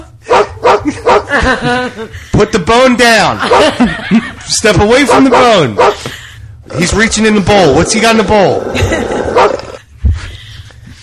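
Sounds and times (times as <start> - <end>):
dog barking: 0.3 - 1.3, 3.4 - 3.8, 5.0 - 6.1, 9.3 - 9.8
laughter: 0.8 - 4.8, 8.5 - 9.8
speech: 1.4 - 6.1, 6.7 - 9.2.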